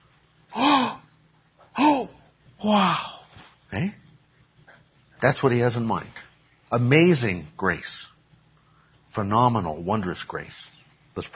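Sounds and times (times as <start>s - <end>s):
person gasping deliberately: 0.5s - 1.0s
speech: 2.6s - 3.1s, 3.8s - 4.0s, 5.2s - 8.1s, 9.2s - 11.3s.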